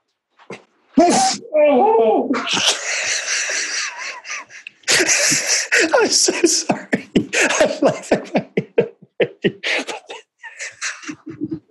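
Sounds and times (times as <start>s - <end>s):
person sneezing: 1.0s - 1.4s
person groaning in pain from a back gone out from a sneeze: 1.0s - 2.5s
speech: 1.0s - 2.8s, 6.1s - 6.9s
laughter: 2.4s - 11.6s.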